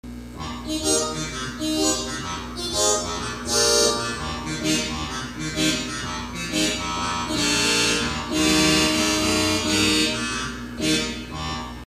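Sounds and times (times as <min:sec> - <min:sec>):
kinura organ stop: 0:00.2 - 0:11.8.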